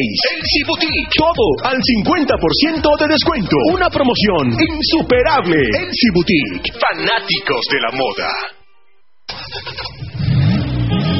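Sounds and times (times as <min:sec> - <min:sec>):
speech: 0:00.0 - 0:08.6, 0:09.5 - 0:10.0
car engine roaring to life and revving: 0:09.3 - 0:11.1.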